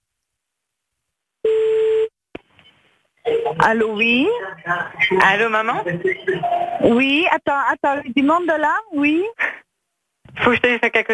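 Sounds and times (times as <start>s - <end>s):
telephone electronic tone while a call is dialled: 1.4s - 2.1s
speech: 3.5s - 9.6s, 10.4s - 11.1s.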